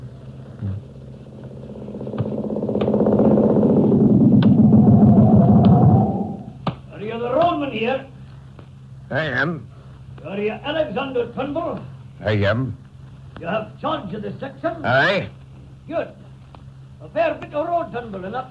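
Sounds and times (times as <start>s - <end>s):
motorcycle engine roaring: 0.0s - 6.6s
speech: 9.2s - 9.7s, 10.4s - 12.8s, 13.4s - 16.2s, 17.0s - 18.4s.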